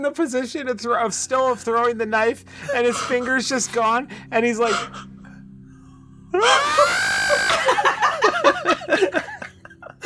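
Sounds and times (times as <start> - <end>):
speech: 0.0 - 5.1, 6.4 - 6.9
person laughing choppily: 2.6 - 3.9, 6.4 - 10.0
person imitating a loud sustained scream: 6.4 - 7.7.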